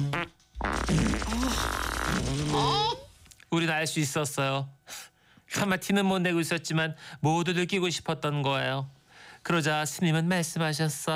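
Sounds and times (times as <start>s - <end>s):
loud farts: 0.0s - 3.0s
speech: 0.0s - 11.1s.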